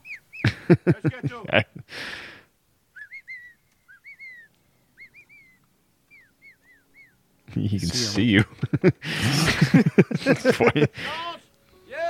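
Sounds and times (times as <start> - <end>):
person whistling warbling chirps as a signal: 0.0 - 0.5, 2.9 - 7.2
laughter: 0.4 - 1.9, 7.6 - 11.4
speech: 0.7 - 2.3, 7.6 - 11.4.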